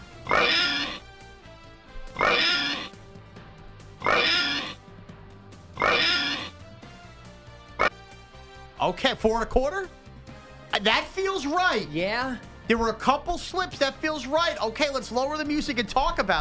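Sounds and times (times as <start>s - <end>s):
brief sharp snort by a person imitating a pig: 0.2s - 1.1s, 2.1s - 3.0s, 4.0s - 4.8s, 5.8s - 6.6s, 7.8s - 8.0s
person imitating pig oinks: 0.3s - 1.0s, 2.2s - 2.9s, 4.0s - 4.8s, 5.8s - 6.5s
speech: 8.9s - 10.0s, 10.8s - 16.4s.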